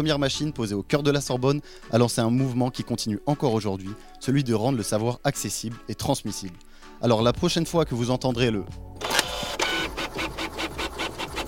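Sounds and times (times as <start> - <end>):
speech: 0.0 - 9.0
laboring printer grinding and whirring: 9.0 - 11.4.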